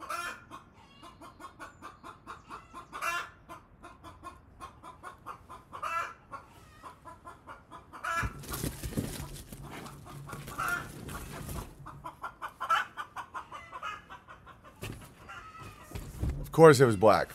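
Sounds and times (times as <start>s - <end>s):
hen clucking after laying an egg: 0.0s - 17.3s
speech: 16.6s - 17.3s.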